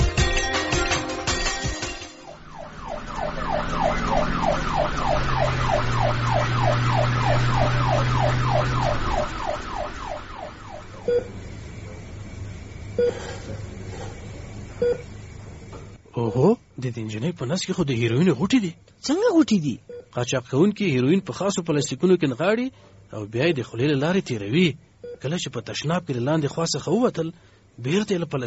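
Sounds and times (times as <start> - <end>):
ambulance siren wailing in a fast warble: 0.1 - 11.5
speech: 16.9 - 28.4.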